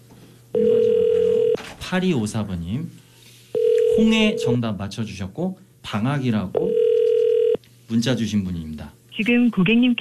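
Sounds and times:
ringback tone on an outgoing landline call: 0.6 - 1.6, 3.6 - 4.6, 6.6 - 7.6
speech: 1.9 - 3.0, 4.0 - 6.8, 7.9 - 9.9.

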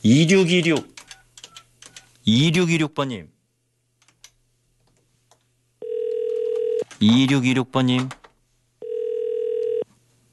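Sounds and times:
speech: 0.0 - 0.9, 2.3 - 3.3, 7.0 - 8.2
telephone ringback tone: 5.8 - 6.8, 8.8 - 9.8.

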